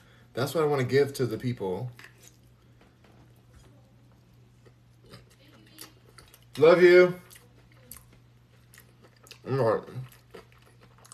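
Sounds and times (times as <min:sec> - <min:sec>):
speech: 0:00.4 - 0:02.1, 0:06.6 - 0:07.2, 0:09.4 - 0:10.1
person chewing fried tofu and kale: 0:01.9 - 0:03.7, 0:04.3 - 0:06.6, 0:07.2 - 0:11.1.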